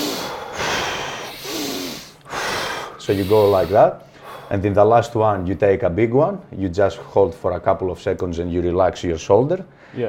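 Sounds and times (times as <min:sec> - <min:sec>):
intense breaths drawn in through the nose during a breathing exercise: 0:00.0 - 0:04.6
speech: 0:03.1 - 0:10.0.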